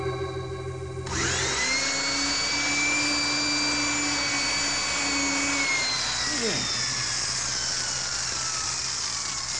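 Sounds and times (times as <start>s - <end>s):
high-speed drill boring into a time lock: 1.0s - 9.5s.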